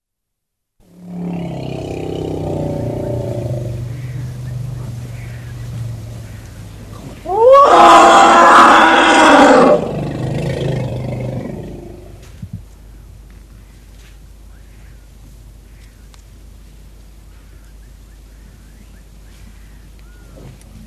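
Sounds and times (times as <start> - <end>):
African bush elephant loud harsh brassy trumpet blast: 0.9 - 5.5, 6.9 - 12.1
African bush elephant rumbling low: 0.9 - 12.2.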